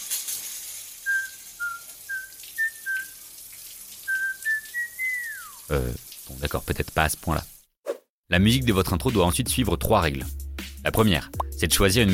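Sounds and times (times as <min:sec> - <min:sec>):
shower running water hiss: 0:00.0 - 0:07.7
person whistling a bouncy tune in the shower: 0:01.0 - 0:03.2, 0:04.1 - 0:05.6
speech: 0:05.7 - 0:07.5, 0:08.3 - 0:12.1.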